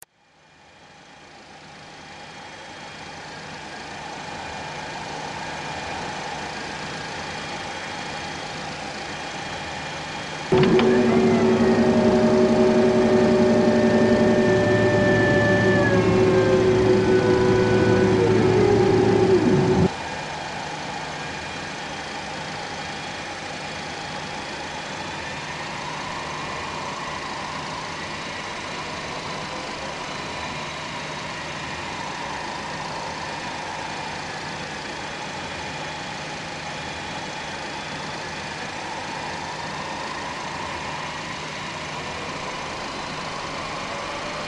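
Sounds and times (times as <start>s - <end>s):
interior ambience: 10.5s - 19.9s.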